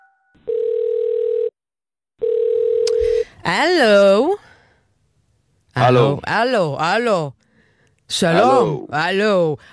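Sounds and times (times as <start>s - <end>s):
buzzing telephone ringback tone: 0.5s - 1.5s, 2.2s - 3.0s
speech: 3.4s - 4.4s, 5.8s - 7.4s, 8.1s - 9.7s.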